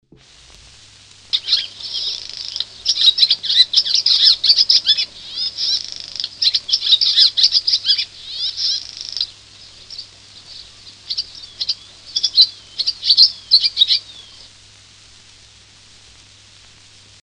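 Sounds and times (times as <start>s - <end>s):
barn swallow calling: 1.3s - 14.6s.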